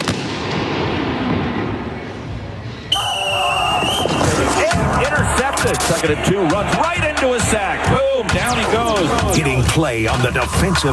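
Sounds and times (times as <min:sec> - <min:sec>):
fireworks booming and crackling: 0:00.0 - 0:02.0
low rumble of crowd noise: 0:00.4 - 0:10.9
fireworks shrill whistling streaks: 0:02.8 - 0:04.5
speech: 0:05.9 - 0:10.9.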